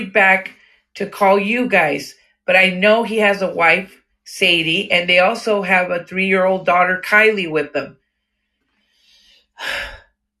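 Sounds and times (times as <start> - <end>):
speech: 0.0 - 8.0, 9.6 - 10.0
heavy breathing: 8.1 - 10.1.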